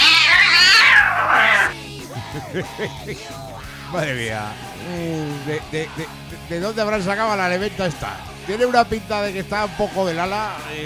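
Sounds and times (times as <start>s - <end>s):
cat yowling and meowing: 0.0s - 1.7s
laughter: 0.0s - 3.5s, 4.5s - 6.5s
speech: 2.3s - 10.8s.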